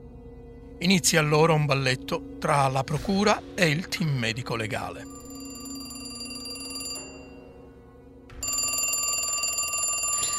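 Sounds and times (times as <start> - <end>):
speech: 0.8 - 5.2
telephone ringing with a call from the public prosecutor: 5.0 - 10.3.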